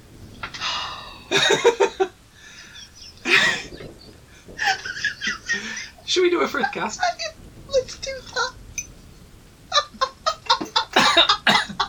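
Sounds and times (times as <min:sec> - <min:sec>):
laughter: 0:01.3 - 0:07.2, 0:09.7 - 0:11.8
speech: 0:01.4 - 0:01.9, 0:06.1 - 0:07.2
person coughing after choking on coffee: 0:10.9 - 0:11.8.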